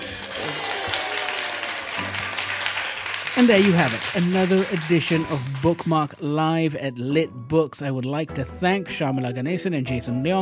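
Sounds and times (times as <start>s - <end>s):
audience applause at a live book event in a bookshop: 0.0s - 6.1s
speech: 3.4s - 10.4s.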